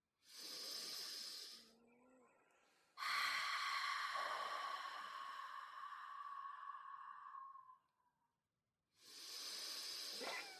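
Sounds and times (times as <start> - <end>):
deep cleansing breaths in through the nose and out through the mouth: 0.2 - 1.8, 2.6 - 7.9, 9.0 - 10.5.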